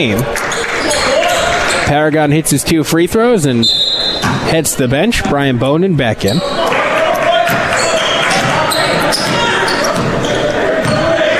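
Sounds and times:
speech: 0.0s - 0.5s, 1.9s - 6.7s
crowd noise at a basketball game: 0.0s - 11.3s
murmur of voices: 0.0s - 11.3s
basketball dribbled up the court: 4.2s - 4.6s, 7.2s - 11.2s.

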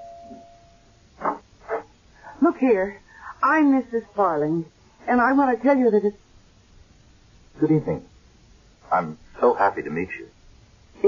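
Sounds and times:
doorbell ringing in short bursts: 0.0s - 1.0s
faint steady tone: 0.0s - 11.0s
speech: 2.6s - 6.2s, 7.6s - 8.1s, 8.9s - 10.4s.

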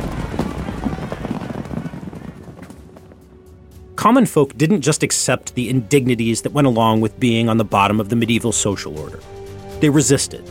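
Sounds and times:
several horses' hooves clip-clopping at a brisk pace: 0.0s - 3.8s
speech: 4.0s - 10.5s.

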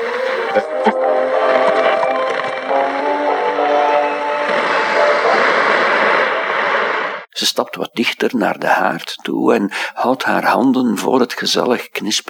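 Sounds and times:
radio switched on crackling with static hiss: 0.0s - 7.8s
speech: 0.5s - 1.1s, 7.6s - 12.2s.

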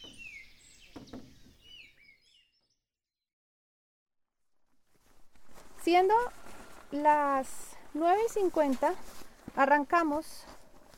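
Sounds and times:
many birds singing in the early morning by a lake after a rainy night: 0.0s - 2.8s
speech: 5.9s - 10.6s.

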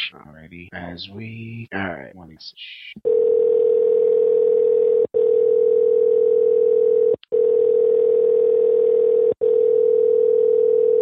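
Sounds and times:
speech: 0.1s - 4.7s
telephone tone during call placement: 3.1s - 11.0s.

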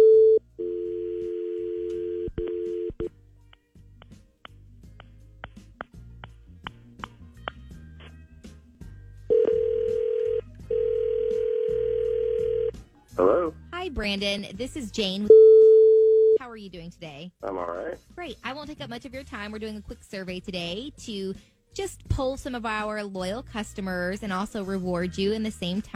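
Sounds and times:
phone line dial tone: 0.0s - 3.1s, 9.3s - 12.7s
telephone dialing beeps and clicks: 0.0s - 3.1s, 15.3s - 16.4s
telephone ringing tones as the call goes through: 0.0s - 3.1s, 9.3s - 12.7s, 15.3s - 16.4s
speech: 14.0s - 15.3s, 16.7s - 25.9s.

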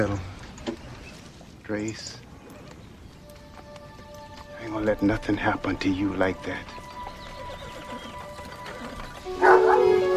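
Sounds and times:
speech: 0.0s - 0.3s, 1.7s - 2.2s, 4.6s - 6.8s
dog howling at the mouth of a cave: 9.2s - 10.1s.

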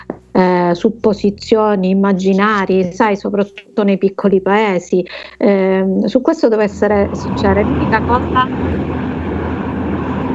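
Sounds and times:
train rumbling past outside: 0.0s - 3.0s, 6.7s - 10.3s
speech: 0.4s - 8.7s.

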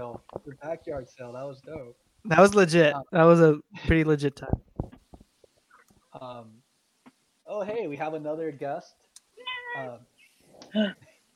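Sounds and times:
faint noise: 0.0s - 11.3s
speech: 0.1s - 4.7s, 6.2s - 6.6s, 7.5s - 9.0s, 9.7s - 11.1s
female cat meowing: 9.4s - 10.0s.

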